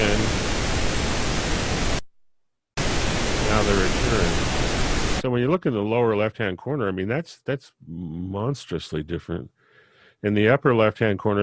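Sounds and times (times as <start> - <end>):
broadband pink noise test signal: 0.0 - 2.0, 2.8 - 5.2
speech: 5.2 - 9.6, 10.2 - 11.4.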